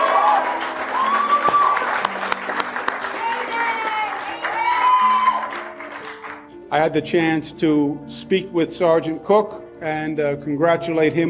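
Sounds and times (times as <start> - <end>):
audience cheering: 0.0 - 6.0
large audience applause: 0.0 - 6.5
speech: 6.7 - 11.2.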